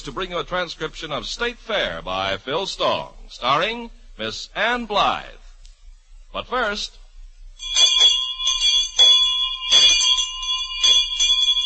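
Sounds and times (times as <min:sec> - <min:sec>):
speech: 0:00.0 - 0:05.4, 0:06.3 - 0:07.0
bell ringing: 0:07.6 - 0:11.6.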